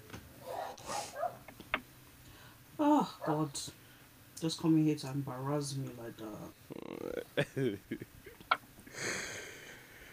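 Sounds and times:
dog yipping: 0:00.4 - 0:01.4
neighbor's dog barking: 0:00.4 - 0:01.4, 0:03.2 - 0:03.5
speech: 0:03.0 - 0:03.8, 0:04.4 - 0:08.2.

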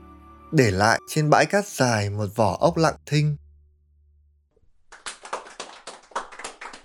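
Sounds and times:
speech: 0:00.5 - 0:03.4
group applause after a duet: 0:04.8 - 0:06.8.

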